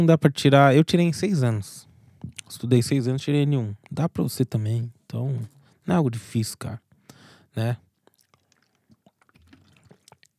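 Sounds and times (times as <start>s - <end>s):
speech: 0.0s - 6.8s, 7.5s - 7.8s
swallowing: 1.8s - 2.6s, 6.9s - 10.3s
person drinking water: 1.9s - 2.6s, 5.4s - 5.8s, 6.9s - 10.3s
mouth clicks: 2.1s - 2.8s, 3.8s - 4.2s, 8.0s - 10.3s.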